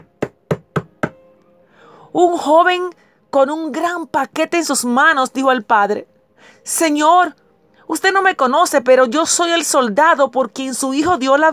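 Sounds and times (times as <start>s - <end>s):
firm knocking on a door: 0.0s - 1.2s
speech: 2.1s - 11.5s.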